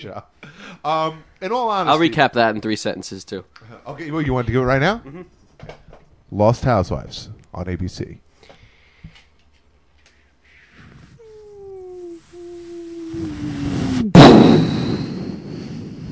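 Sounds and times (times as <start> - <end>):
speech: 0.0 - 8.2
voice mimicking sound effects: 11.1 - 14.3
descending whistle: 11.6 - 16.1
loud explosion rumbling: 13.2 - 16.1.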